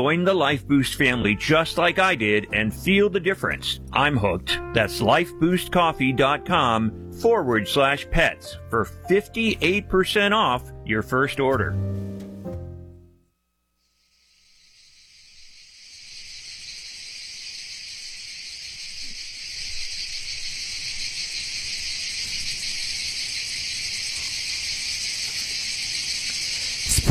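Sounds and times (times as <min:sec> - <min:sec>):
speech: 0:00.0 - 0:12.0
cicadas buzzing in a droning chorus: 0:13.9 - 0:27.0.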